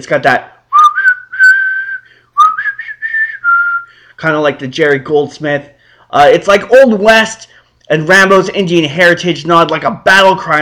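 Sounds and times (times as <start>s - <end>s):
speech: 0.0s - 0.5s, 4.2s - 10.6s
melodic human whistle from a film soundtrack: 0.7s - 4.0s.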